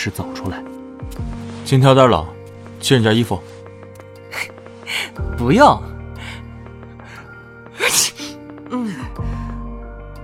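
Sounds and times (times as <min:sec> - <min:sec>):
speech: 0:00.0 - 0:03.5, 0:05.4 - 0:05.9
steady music: 0:00.0 - 0:10.2
person sneezing: 0:07.8 - 0:08.4.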